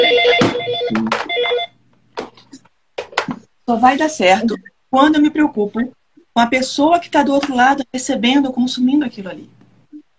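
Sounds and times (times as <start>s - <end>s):
telephone ringing with a warbling electronic trill: 0.0s - 1.8s
speech: 3.7s - 9.6s.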